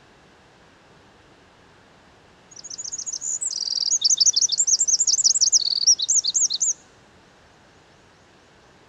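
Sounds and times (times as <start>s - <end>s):
Eurasian wren Troglodytes troglodytes singing high trills and warbled notes: 2.5s - 6.8s.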